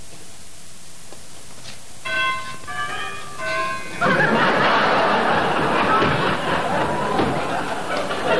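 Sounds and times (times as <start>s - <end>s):
doorbell chiming in clear tones: 2.0s - 8.3s
crowd laughter and noise: 2.7s - 8.3s.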